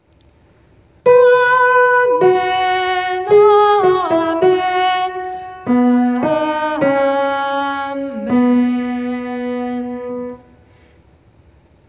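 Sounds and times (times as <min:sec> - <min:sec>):
soprano singing amen: 0:01.1 - 0:10.5.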